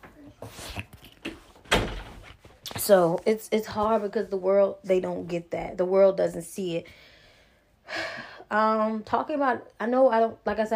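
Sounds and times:
soft bumps and shuffles: 1.3 - 6.4
door being pulled shut with a loud thud and rattling: 1.6 - 2.3
speech: 2.9 - 7.0, 8.5 - 10.7.

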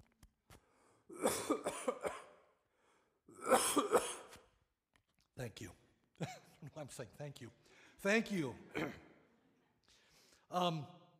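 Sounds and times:
harsh hacking coughs: 1.1 - 2.5, 3.3 - 4.5, 8.7 - 9.3
speech: 6.9 - 9.1, 10.5 - 11.0.

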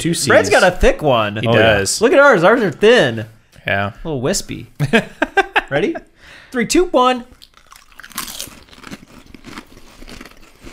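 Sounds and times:
speech: 0.0 - 7.4
laughter: 4.8 - 6.1
biting into crunchy salt-free potato chips: 7.4 - 10.7.

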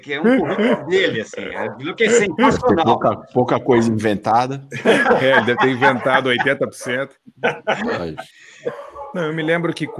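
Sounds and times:
laughter: 0.0 - 1.4, 4.7 - 8.8
speech: 0.0 - 9.9
dogs barking and yelping: 0.1 - 2.9, 8.6 - 9.9.

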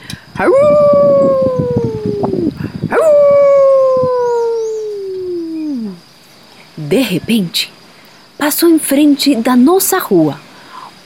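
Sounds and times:
speech: 0.4 - 0.8, 6.9 - 7.8, 8.4 - 10.4
dog howling: 0.4 - 5.6.

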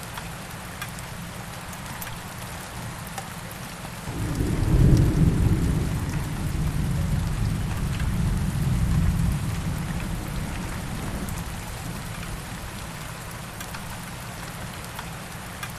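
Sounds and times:
rain pattering: 0.0 - 15.7
low rumble of thunder: 4.1 - 12.8.

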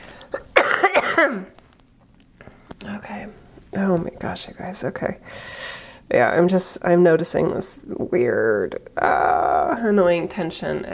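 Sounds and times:
single harsh cough with raspy tail: 0.6 - 1.5
speech: 1.2 - 1.6, 3.2 - 10.9.

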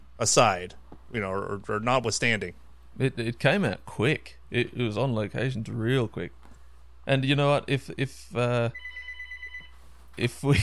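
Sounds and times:
speech: 0.2 - 6.4, 7.1 - 9.0, 10.2 - 10.6
fainter steady electronic tone: 8.5 - 9.8
telephone ringing with an incoming call: 8.7 - 9.8.

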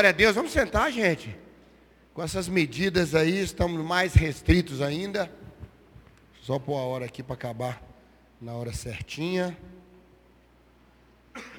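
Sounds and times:
speech: 0.0 - 1.4, 2.2 - 5.4, 6.4 - 9.8, 11.4 - 11.5
low steady electrical hum: 0.0 - 11.5
short sharp cough: 11.3 - 11.5.

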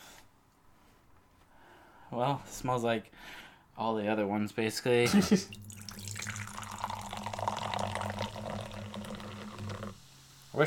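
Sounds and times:
speech: 2.1 - 5.8
fizzy drink poured into a cup: 5.5 - 10.0.

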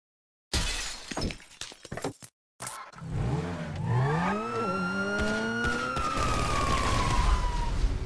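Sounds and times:
glass breaking in video game audio: 0.5 - 2.3
car noise in video game audio: 2.7 - 6.8
siren wailing in video game audio: 3.8 - 8.0.

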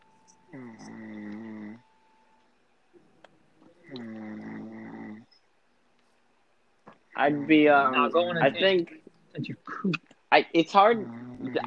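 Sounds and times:
long rasping snores: 0.5 - 1.8, 3.8 - 5.3, 10.8 - 11.6
speech: 7.2 - 11.6.

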